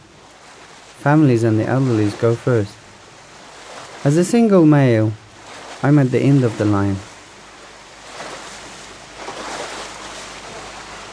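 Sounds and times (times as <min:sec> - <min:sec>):
sea waves washing around a small boat: 0:00.0 - 0:11.1
speech: 0:01.0 - 0:02.8, 0:04.0 - 0:05.2, 0:05.8 - 0:07.1.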